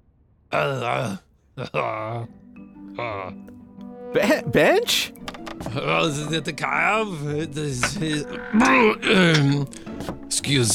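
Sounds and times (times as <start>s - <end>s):
person groaning in a bathroom: 0.5s - 2.3s, 3.0s - 3.4s, 8.5s - 9.4s
speech: 0.5s - 2.4s, 3.0s - 10.7s.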